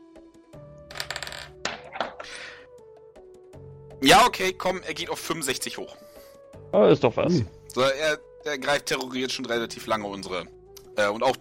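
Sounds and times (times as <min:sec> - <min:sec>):
dice rattling and tumbling across a hard surface: 0:00.9 - 0:02.2
speech: 0:04.0 - 0:11.3.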